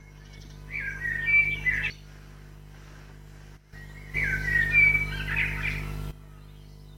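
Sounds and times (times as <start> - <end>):
bird calling with squeaky chattering chirps: 0.0 - 2.1, 3.7 - 6.9
steady low hum: 0.0 - 6.9.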